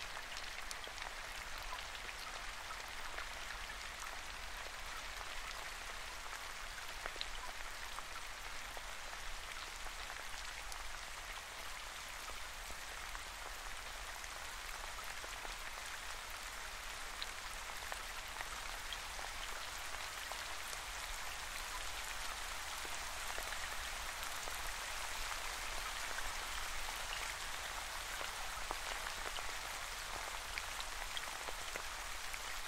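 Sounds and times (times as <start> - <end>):
gentle spring rain falling: 0.0 - 32.6.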